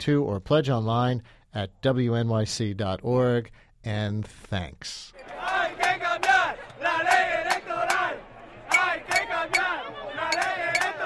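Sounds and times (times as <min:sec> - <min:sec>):
speech: 0:00.0 - 0:06.0
thousands of people protesting in a street, chanting and shouting: 0:05.1 - 0:11.0.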